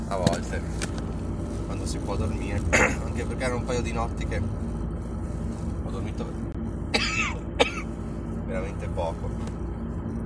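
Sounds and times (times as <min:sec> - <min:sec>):
steady low hum: 0:00.0 - 0:10.2
speech: 0:00.1 - 0:00.8, 0:01.8 - 0:04.8, 0:06.0 - 0:06.4, 0:08.5 - 0:09.6
person coughing: 0:02.7 - 0:03.2, 0:06.9 - 0:07.9.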